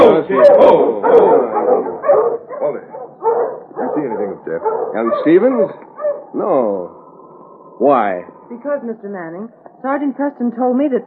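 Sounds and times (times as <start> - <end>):
sled dogs barking and yipping on a narrow trail: 0.0 - 6.4
speech: 4.0 - 7.0, 7.8 - 11.0.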